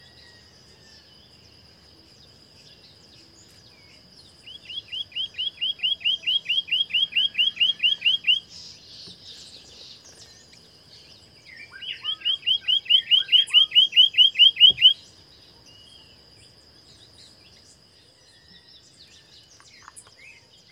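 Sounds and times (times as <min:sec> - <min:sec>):
scrub greenlet calling: 0:04.4 - 0:10.6, 0:11.4 - 0:15.7.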